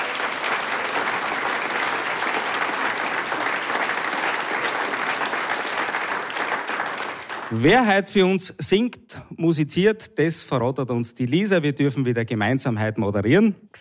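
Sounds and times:
large audience applauding the event organizers: 0:00.0 - 0:08.0
speech: 0:07.5 - 0:13.7.

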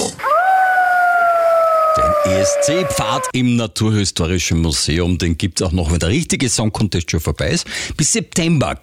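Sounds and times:
wolf howling: 0:00.2 - 0:03.3
speech: 0:02.7 - 0:08.8.

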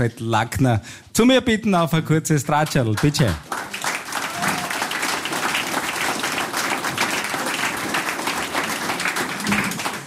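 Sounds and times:
speech: 0:00.0 - 0:03.5
audience applauding in the town of Dorfeiach in Styria: 0:02.8 - 0:10.0.

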